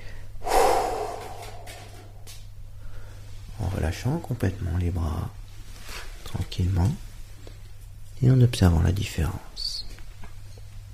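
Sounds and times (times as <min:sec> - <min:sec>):
long forceful exhale releasing held breath in a relaxation exercise: 0:00.0 - 0:03.2
speech: 0:03.8 - 0:05.4, 0:06.3 - 0:07.1, 0:08.2 - 0:09.7.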